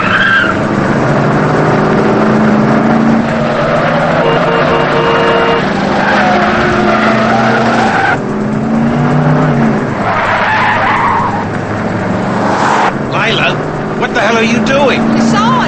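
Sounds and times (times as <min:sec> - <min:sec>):
car engines roaring as cars speed through city street traffic in a chase: 0:00.0 - 0:15.6
tires squealing as cars swerve through city street traffic in a chase: 0:00.0 - 0:15.6.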